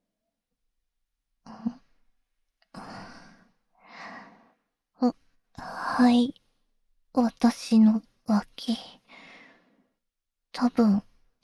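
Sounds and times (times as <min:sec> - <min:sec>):
slow deep breathing: 0:02.7 - 0:04.7, 0:09.1 - 0:10.0
speech: 0:06.0 - 0:06.4, 0:07.2 - 0:09.0, 0:10.6 - 0:11.4.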